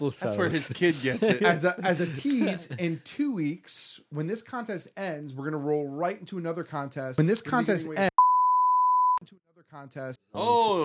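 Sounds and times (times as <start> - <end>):
speech: 0.0 - 8.1, 9.2 - 10.8
censor beep covering a word about a contest prize: 8.2 - 9.2.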